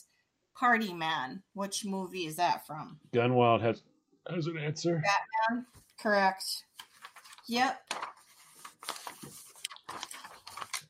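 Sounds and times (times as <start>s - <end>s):
speech: 0.6s - 6.7s, 7.5s - 8.1s
paper notes rustling and crinkling: 6.7s - 10.8s.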